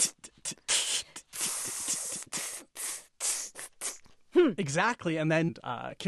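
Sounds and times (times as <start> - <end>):
beatbox open hi-hat made breathing in: 0.0 - 4.6
speech: 4.4 - 6.0.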